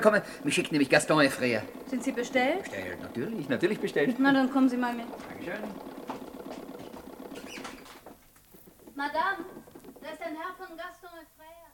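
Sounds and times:
speech: 0:00.0 - 0:05.9, 0:09.0 - 0:11.5
sewing machine clattering: 0:00.0 - 0:11.0.

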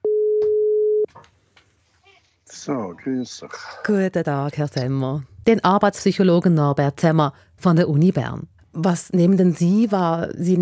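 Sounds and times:
telephone ringing tone as a call is placed: 0:00.0 - 0:01.1
speech: 0:02.5 - 0:10.6.

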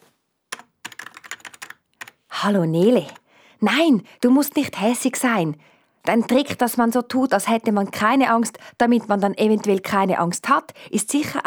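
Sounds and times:
computer keyboard typing a message: 0:00.5 - 0:02.2, 0:02.9 - 0:03.2
speech: 0:02.4 - 0:11.4.

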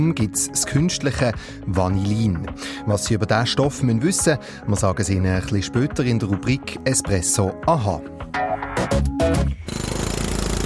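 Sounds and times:
speech: 0:00.0 - 0:09.8
rapid mechanical pounding at a construction site: 0:09.7 - 0:10.6.

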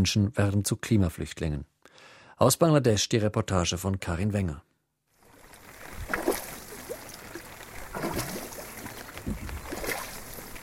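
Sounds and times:
speech: 0:00.0 - 0:01.7, 0:02.4 - 0:04.7
boat splashing through monsoon floodwater in Bangladesh: 0:05.2 - 0:10.6.

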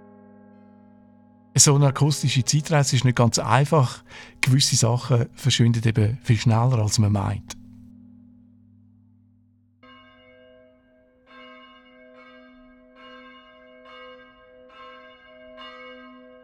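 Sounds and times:
church bells ringing: 0:01.6 - 0:07.6, 0:09.8 - 0:16.4
speech: 0:01.6 - 0:07.6.

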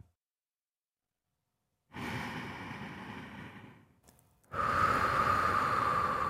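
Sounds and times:
person breathing deeply in and out: 0:01.9 - 0:06.2.

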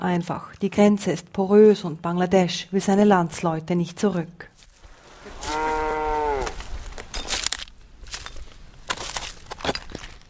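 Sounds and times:
speech: 0:00.0 - 0:04.5
crunching and rustling: 0:04.6 - 0:10.2
stray emaciated calf bleating among the ruins of an abandoned village: 0:05.4 - 0:06.6.

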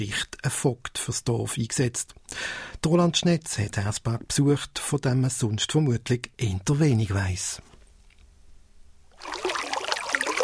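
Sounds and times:
speech: 0:00.0 - 0:07.7
water trickling and splashing into a stone trough: 0:09.2 - 0:10.4.

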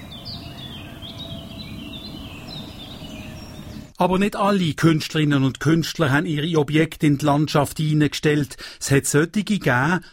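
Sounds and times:
birds chirping and twittering in short high calls: 0:00.0 - 0:04.0
speech: 0:04.0 - 0:10.1.

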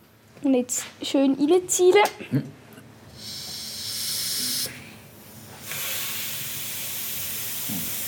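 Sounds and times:
speech: 0:00.4 - 0:02.6
air hissing during slow pump inflation: 0:03.1 - 0:08.0.

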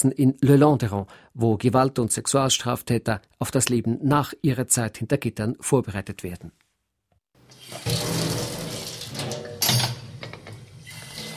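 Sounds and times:
speech: 0:00.0 - 0:06.6
tap water running into a sink while rinsing dishes at a correctional centre in Le Landeron, Switzerland: 0:07.4 - 0:11.3.

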